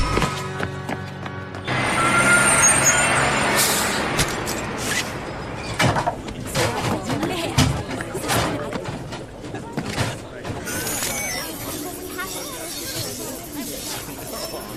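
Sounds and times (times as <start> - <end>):
bus engine rumble: 0.0 - 14.7
clanks and knocks of a bus settling to a halt: 5.6 - 10.7.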